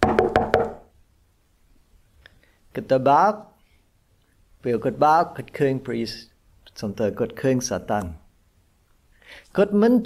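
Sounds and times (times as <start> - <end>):
knocking on the front door of a house: 0.0 - 0.9
speech: 2.8 - 3.5, 4.6 - 8.2, 9.3 - 10.0.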